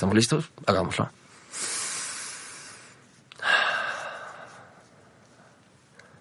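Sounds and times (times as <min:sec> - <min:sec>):
speech: 0:00.0 - 0:01.7
long airy inhalation: 0:01.3 - 0:06.1
breath out with a soft rasp: 0:01.5 - 0:04.8.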